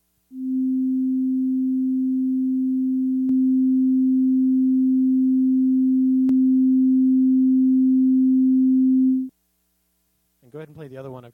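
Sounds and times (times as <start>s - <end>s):
low pure test tone drifting out of phase: 0.3s - 9.3s
speech: 10.7s - 11.3s.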